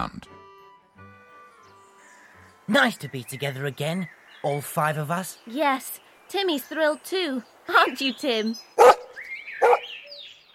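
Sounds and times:
speech: 0.0 - 0.3, 2.7 - 8.9
dog barking during a picnic on a hilltop: 8.8 - 9.9.

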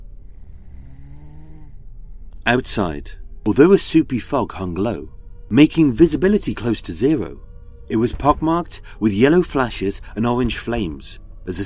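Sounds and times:
big man snoring: 0.3 - 1.8
speech: 2.4 - 11.6.

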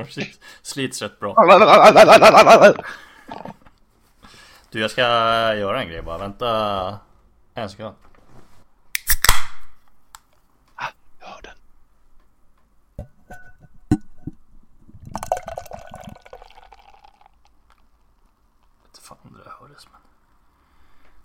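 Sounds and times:
speech: 0.0 - 3.6, 4.7 - 8.1
laughter: 1.4 - 3.6
drink poured into a glass: 14.9 - 17.9.

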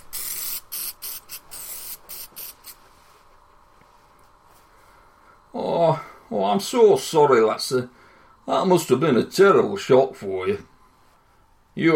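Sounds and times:
hissing spray bursts: 0.0 - 2.8
quiet noise: 0.0 - 11.9
speech: 5.5 - 10.7, 11.8 - 11.9.

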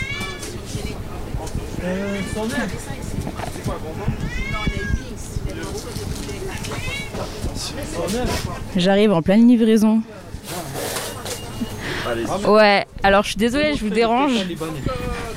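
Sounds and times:
people chattering: 0.0 - 15.3
speech: 1.8 - 10.3, 12.0 - 15.3
cat meowing: 4.2 - 5.1.

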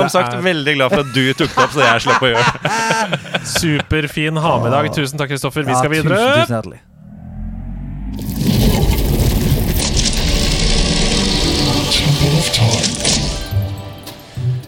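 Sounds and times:
laughter: 0.0 - 4.4
speech: 0.0 - 6.9
heavy stone cave door grinding open: 6.9 - 13.6.

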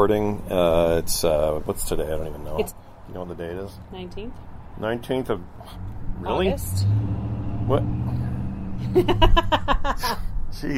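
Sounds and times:
speech: 0.0 - 8.2, 8.8 - 10.7
truck engine revving: 4.8 - 9.8
laughter: 8.8 - 10.3.

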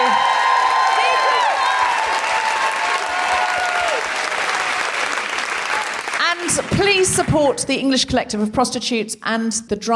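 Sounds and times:
crowd cheering and whooping: 0.0 - 6.2
large crowd applauding a performer: 0.0 - 7.6
speech: 6.8 - 9.9.

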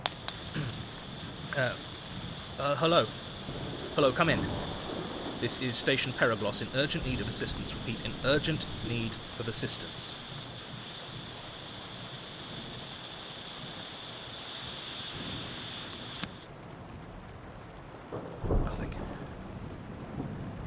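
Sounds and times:
thin high whine: 0.0 - 16.4
deep rumbling roll of thunder: 0.0 - 20.6
steady rain in a thunderstorm: 0.0 - 20.6
speech: 1.6 - 1.9, 2.6 - 4.7, 5.4 - 10.2
click: 15.9 - 16.4.

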